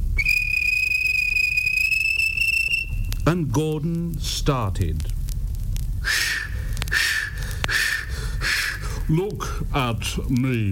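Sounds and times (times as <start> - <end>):
low rumble: 0.0 - 10.6
railway guard blowing a whistle at a station: 0.1 - 3.1, 6.0 - 8.8
speech: 3.3 - 5.2, 9.1 - 10.6.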